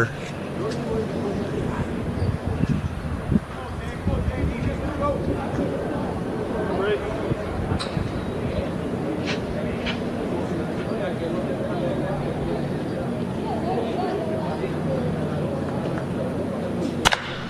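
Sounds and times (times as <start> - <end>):
speech: 0.0 - 0.8
crowd murmuring in a ballpark during a baseball game: 0.0 - 17.4
bat solidly hitting a baseball into a line drive: 17.0 - 17.4.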